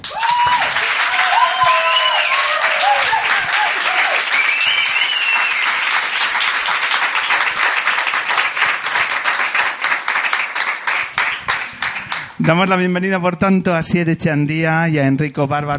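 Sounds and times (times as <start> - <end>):
whoops and cheers: 0.0 - 6.0
sustained applause from a large audience: 0.0 - 12.7
speech: 12.5 - 15.7.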